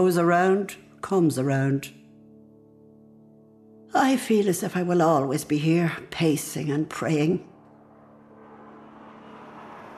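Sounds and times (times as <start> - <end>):
speech: 0.0 - 2.0, 3.9 - 7.5
airplane landing or taking off near an airport: 7.8 - 9.9.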